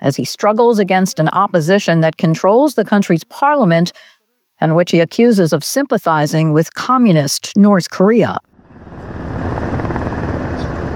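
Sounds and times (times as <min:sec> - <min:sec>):
speech: 0:00.0 - 0:08.5
helicopters landing and circling over national assembly grounds: 0:08.6 - 0:10.9.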